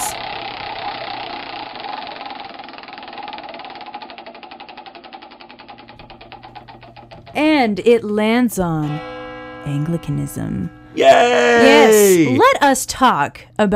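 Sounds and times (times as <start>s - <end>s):
prize wheel spun in a game: 0.0s - 7.6s
speech: 7.4s - 13.7s.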